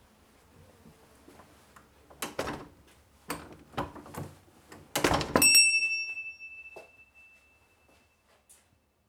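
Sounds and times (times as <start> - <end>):
entrance door bell ringing: 5.3 - 8.0.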